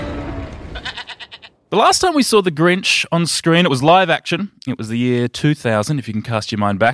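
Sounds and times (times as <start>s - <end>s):
little goat bleating loudly: 0.7s - 1.5s
speech: 1.7s - 6.9s.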